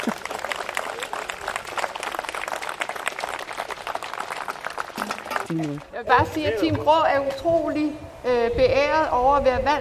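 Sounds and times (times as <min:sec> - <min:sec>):
audience clapping: 0:00.0 - 0:05.9
speech: 0:05.5 - 0:09.7.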